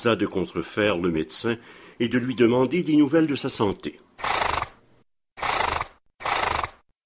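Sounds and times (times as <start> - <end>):
speech: 0.0 - 4.3
horse neighing: 4.2 - 4.8, 5.4 - 6.8.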